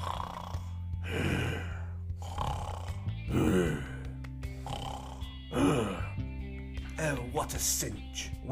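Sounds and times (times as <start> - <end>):
ogre snoring loudly in sleep: 0.0 - 6.2
speech: 7.5 - 8.5.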